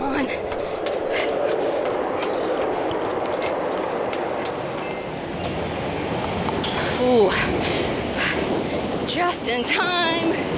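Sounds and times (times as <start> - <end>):
train rumbling: 0.0 - 10.5
speech: 9.1 - 10.5.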